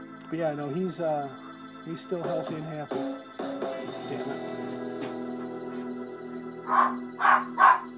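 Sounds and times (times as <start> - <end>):
speech: 0.3 - 4.6, 6.7 - 7.7
dog giving short sharp barks: 6.7 - 7.9.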